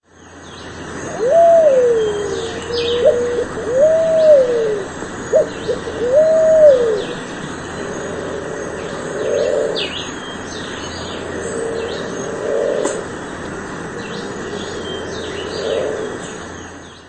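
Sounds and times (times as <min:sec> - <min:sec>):
Pale-vented pigeon cooing song: 0:01.0 - 0:09.9, 0:11.3 - 0:13.1, 0:14.2 - 0:16.3.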